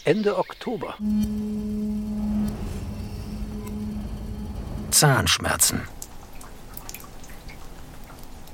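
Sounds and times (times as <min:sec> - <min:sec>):
speech: 0:00.0 - 0:01.8, 0:04.9 - 0:06.0
low rumble of running water: 0:01.0 - 0:07.3.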